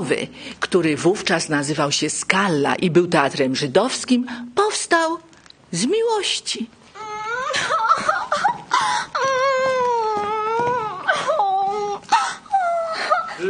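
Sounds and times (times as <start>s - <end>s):
speech: 0.0s - 6.8s
woman crying in a comic stage scene: 7.0s - 13.4s.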